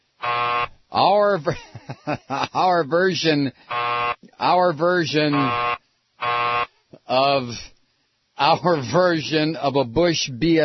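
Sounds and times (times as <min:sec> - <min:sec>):
loud flat novelty buzzer blaring: 0:00.2 - 0:01.1, 0:03.6 - 0:04.3, 0:05.1 - 0:06.8
speech: 0:01.0 - 0:05.8, 0:07.1 - 0:07.7, 0:08.4 - 0:10.6
laughter: 0:01.4 - 0:02.7.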